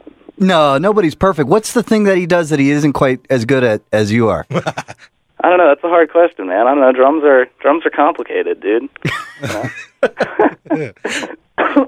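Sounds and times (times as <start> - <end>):
speech: 0.4 - 11.8
laughter: 4.5 - 5.1, 9.1 - 11.3
person coughing in rough bursts: 9.3 - 11.8.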